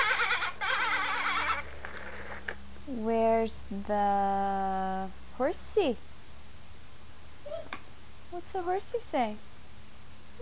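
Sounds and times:
sheep or lamb bleating: 0:00.0 - 0:01.6
speech: 0:02.9 - 0:06.1, 0:08.5 - 0:09.5.

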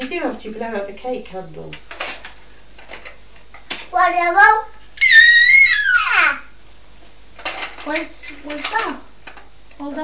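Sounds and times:
speech: 0:00.1 - 0:02.0, 0:04.0 - 0:04.7, 0:07.9 - 0:09.1, 0:09.8 - 0:10.0
young child high-pitched drawn-out scream: 0:04.5 - 0:06.6.

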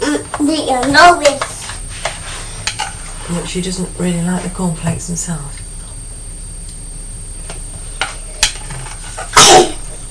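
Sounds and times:
speech: 0:00.5 - 0:01.5, 0:03.3 - 0:05.6
person sneezing: 0:09.3 - 0:09.9.

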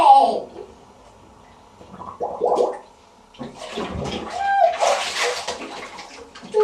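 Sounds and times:
children splashing water in a bathtub: 0:03.4 - 0:06.6.

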